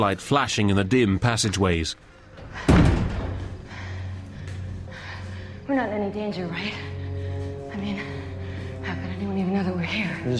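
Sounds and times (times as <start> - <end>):
speech: 0.0 - 3.0, 5.7 - 7.0, 7.8 - 8.2, 9.3 - 10.3
locked door at a reserve power plant opened by its handle: 2.6 - 3.6.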